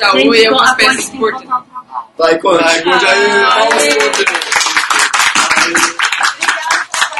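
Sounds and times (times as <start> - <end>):
speech: 0.0 - 4.6
crowd applause: 3.4 - 7.1
sharp claps: 3.7 - 7.1.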